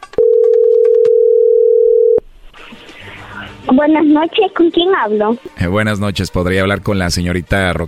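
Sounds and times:
telephone dial tone while placing a call: 0.2 - 2.2
speech: 3.7 - 7.8.

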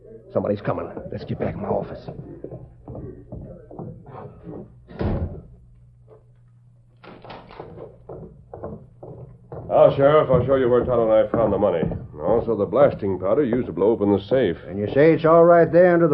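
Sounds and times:
speech: 0.3 - 2.4, 9.7 - 16.1
donkey or mule hooves clopping on a hard floor: 0.5 - 5.6, 7.0 - 16.0.

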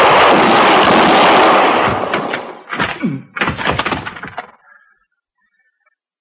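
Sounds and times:
gunshots in a gunfight: 0.0 - 4.5.

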